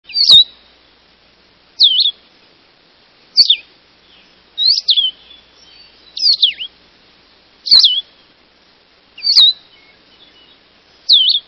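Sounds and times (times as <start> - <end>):
Blue-headed Vireo calling: 0.1 - 0.8, 1.8 - 2.3, 3.3 - 6.8, 7.6 - 8.4, 9.1 - 11.4.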